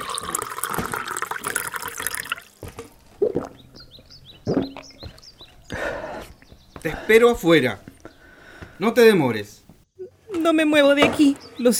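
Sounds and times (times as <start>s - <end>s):
water poured into a glass: 0.0s - 2.6s
speech: 6.8s - 7.8s, 8.8s - 9.6s, 10.5s - 11.7s.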